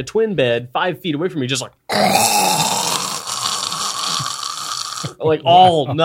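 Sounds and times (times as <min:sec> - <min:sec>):
speech: 0:00.0 - 0:02.6, 0:05.2 - 0:06.0
person imitating loud snoring of a man with sleep apnea: 0:01.9 - 0:05.2.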